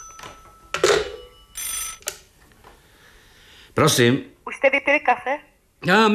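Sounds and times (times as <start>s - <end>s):
telephone bell ringing: 0.0s - 2.1s
speech: 3.8s - 6.1s.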